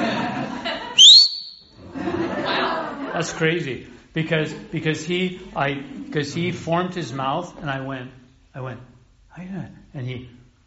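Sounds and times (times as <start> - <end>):
laughter: 0.0 - 1.1, 1.8 - 6.8
person whistling a rising note: 1.0 - 1.7
speech: 3.2 - 10.6.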